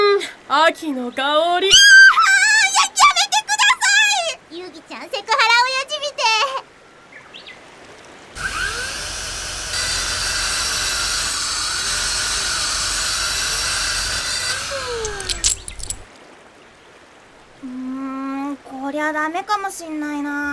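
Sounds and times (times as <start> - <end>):
quiet noise: 0.0 - 8.4, 15.2 - 20.5
speech: 0.5 - 1.9, 19.0 - 20.5
drill whirring with a high whining pitch: 8.4 - 16.1.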